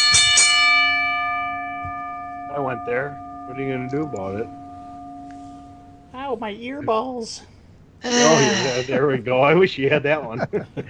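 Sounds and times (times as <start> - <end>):
bell ringing with bright metallic tone: 0.0 - 7.1, 8.1 - 9.0
speech: 2.8 - 4.6, 6.3 - 10.8
laughter: 8.1 - 10.8.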